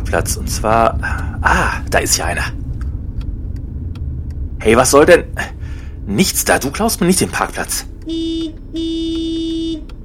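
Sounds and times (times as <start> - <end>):
speech: 0.1 - 2.6, 4.6 - 8.9
car horn honking: 8.0 - 9.9.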